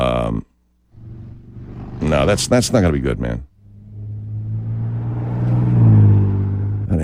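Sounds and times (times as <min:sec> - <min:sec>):
car engine revving with deep rumbling drone: 0:00.9 - 0:07.0
speech: 0:02.1 - 0:03.5.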